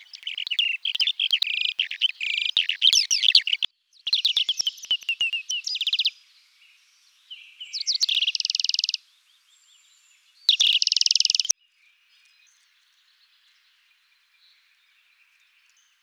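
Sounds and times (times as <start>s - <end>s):
bird song of fast bright trills and chattering notes: 0.0s - 16.0s.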